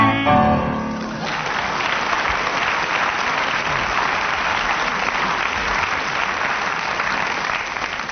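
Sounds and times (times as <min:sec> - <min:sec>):
person singing: 0:00.0 - 0:00.9
studio audience applause: 0:00.9 - 0:08.1.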